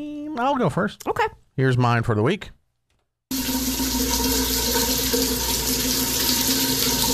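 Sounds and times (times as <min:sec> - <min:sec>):
speech: 0:00.0 - 0:02.6
shower water running: 0:03.3 - 0:07.1.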